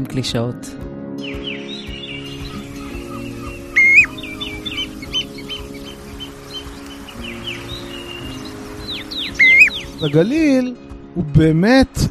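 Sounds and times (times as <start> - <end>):
speech: 0.0 - 1.5, 10.0 - 12.0
birds chirping: 1.2 - 10.6.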